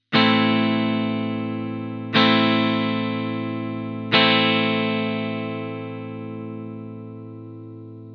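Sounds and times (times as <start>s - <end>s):
A minor guitar chord: 0.0s - 8.1s.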